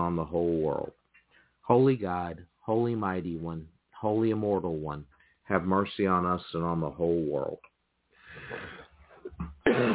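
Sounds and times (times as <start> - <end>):
speech: 0.0 - 1.0, 1.6 - 7.7, 8.4 - 8.8
person coughing: 8.4 - 9.9.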